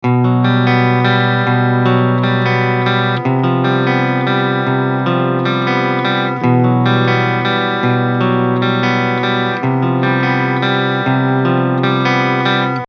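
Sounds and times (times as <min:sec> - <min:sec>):
high-gain distorted guitar on bridge pickup: 0:00.0 - 0:12.8.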